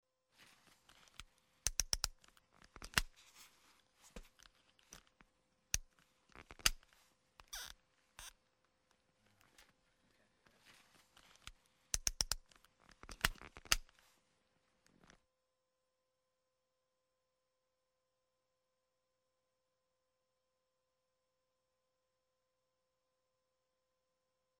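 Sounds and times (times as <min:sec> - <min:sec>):
ice skate buckle clasp: 0:00.9 - 0:03.2, 0:05.8 - 0:08.3, 0:11.2 - 0:14.0.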